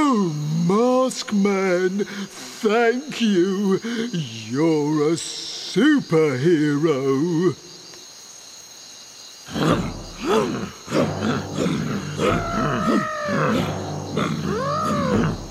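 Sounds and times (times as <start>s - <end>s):
hum of insects: 0.0s - 15.4s
speech: 0.2s - 7.7s, 9.6s - 10.7s
elephants grunting and roaring: 9.5s - 15.4s.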